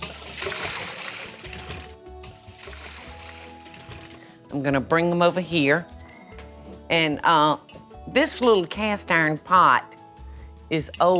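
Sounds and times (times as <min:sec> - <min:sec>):
water from boiled potatoes pouring into a sink: 0:00.0 - 0:04.2
speech: 0:04.5 - 0:06.0, 0:06.9 - 0:10.0, 0:10.7 - 0:11.1.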